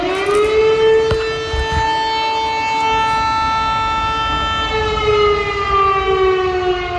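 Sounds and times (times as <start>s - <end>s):
air raid warning siren: 0.0s - 6.9s.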